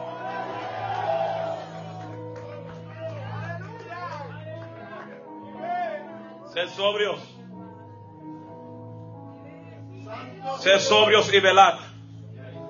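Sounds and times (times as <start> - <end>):
crowd shouting and cheering: 0.0 - 6.2
speech: 6.6 - 7.4, 10.6 - 11.8.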